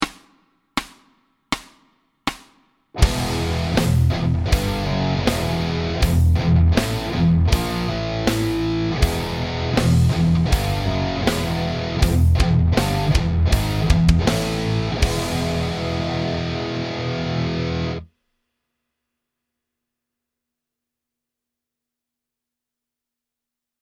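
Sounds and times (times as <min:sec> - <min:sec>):
metal riff: 0:03.0 - 0:18.1.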